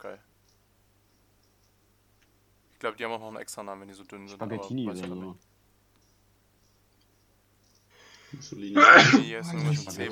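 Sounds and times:
casual speech: 2.7s - 5.4s, 8.3s - 10.1s
single sharp sneeze: 8.8s - 9.3s
laughter: 9.2s - 10.1s.

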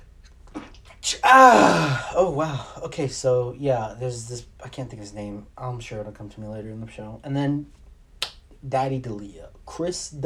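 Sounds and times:
person sneezing: 0.6s - 2.8s
speech: 1.1s - 7.8s, 8.6s - 10.2s.

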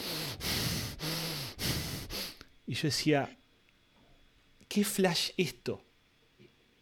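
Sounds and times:
person imitating heavy rasping breathing with groans: 0.0s - 2.5s
speech: 2.7s - 3.4s, 4.7s - 5.9s.

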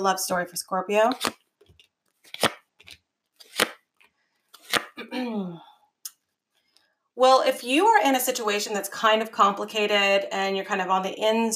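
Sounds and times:
speech: 0.0s - 1.4s, 7.2s - 11.5s
tarot cards being shuffled: 1.1s - 5.0s.

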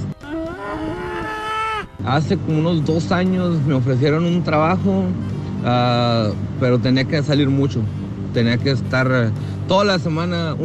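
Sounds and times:
cow mooing: 0.2s - 1.9s
speech: 2.0s - 10.6s.

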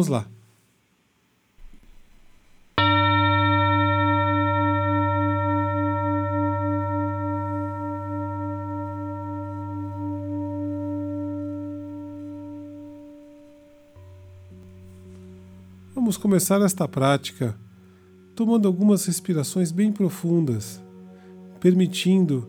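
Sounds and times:
speech: 0.0s - 0.3s, 16.1s - 17.6s, 18.4s - 20.8s, 21.6s - 22.4s
gong struck and ringing out with a deep rich tone: 2.8s - 16.9s.

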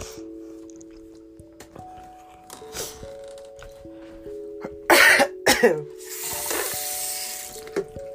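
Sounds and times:
person coughing: 4.8s - 5.9s
breathy rushing hiss: 6.0s - 7.6s.

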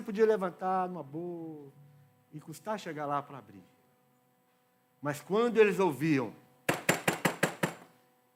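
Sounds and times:
speech: 0.1s - 3.8s, 5.0s - 6.4s
quick sharp knocks on a door: 6.7s - 7.9s.

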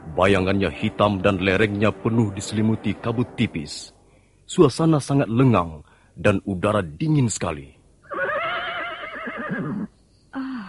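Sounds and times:
speech: 0.2s - 7.8s
horse neighing: 8.0s - 9.9s.

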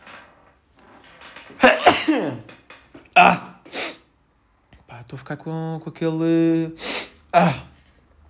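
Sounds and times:
speech: 1.5s - 2.5s, 5.1s - 7.7s
loud sneeze with breathy build-up: 1.6s - 2.5s, 3.2s - 4.0s, 7.3s - 7.7s.

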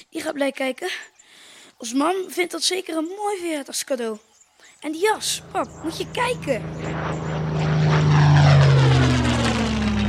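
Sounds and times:
speech: 0.0s - 7.4s
low-flying propeller airplanes roaring overhead: 4.9s - 10.0s.

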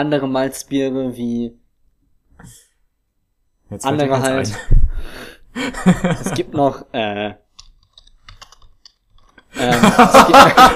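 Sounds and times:
speech: 0.0s - 1.6s, 2.4s - 2.6s, 3.7s - 4.8s, 5.6s - 7.4s, 9.5s - 10.7s
laughter: 5.6s - 6.8s, 9.6s - 10.7s
typing on a computer keyboard: 7.6s - 9.4s.

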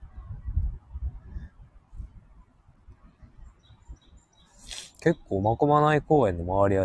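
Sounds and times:
birds calling: 3.1s - 5.5s
speech: 5.0s - 6.8s.

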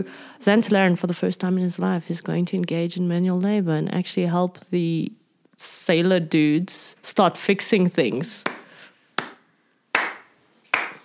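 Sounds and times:
speech: 0.0s - 8.6s
deliberate slow hand claps with short ringing decay: 8.5s - 11.0s.

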